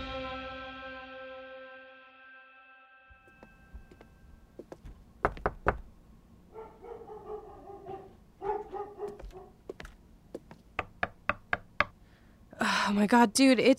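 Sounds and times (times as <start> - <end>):
sharp knocks on an apartment door: 5.3 - 5.9, 10.8 - 11.9
dog barking and whining behind a door: 6.5 - 9.6
speech: 12.9 - 13.7.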